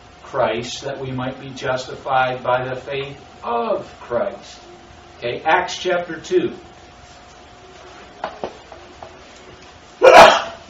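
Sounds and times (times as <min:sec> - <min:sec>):
speech: 0:00.3 - 0:06.7
sharp loud sneeze: 0:10.0 - 0:10.6.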